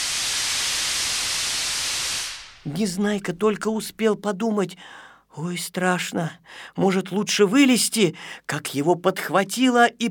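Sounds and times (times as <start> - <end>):
air hissing out of an inflated balloon through an opened valve and hose: 0.0 - 2.6
speech: 2.6 - 10.0.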